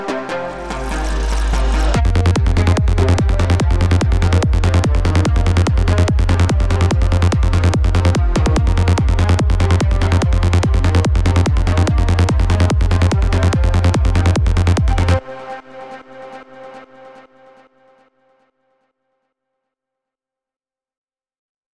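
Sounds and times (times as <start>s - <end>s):
psytrance music: 0.2s - 17.4s.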